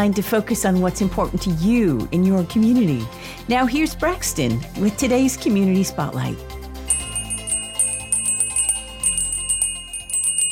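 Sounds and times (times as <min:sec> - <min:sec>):
speech: 0:00.0 - 0:06.6
red kettle bell ringing: 0:06.9 - 0:10.5.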